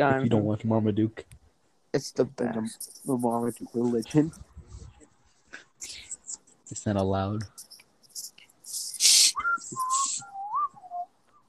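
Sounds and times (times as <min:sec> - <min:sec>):
speech: 0:00.0 - 0:04.5, 0:06.7 - 0:07.6
breathy hissing bursts: 0:08.9 - 0:09.4
person whistling: 0:09.0 - 0:11.1.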